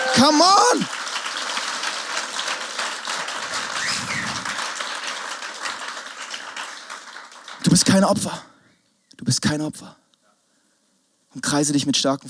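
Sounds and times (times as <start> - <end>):
audience applause: 0.0 - 8.0
speech: 0.2 - 1.0, 7.8 - 8.5, 9.2 - 10.0, 11.4 - 12.2.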